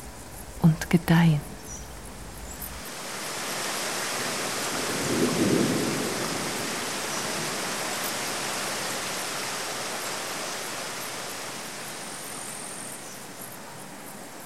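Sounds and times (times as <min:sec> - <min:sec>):
dense rainfall hissing: 0:00.0 - 0:14.4
speech: 0:00.9 - 0:01.5
low rumble of thunder: 0:04.1 - 0:10.5.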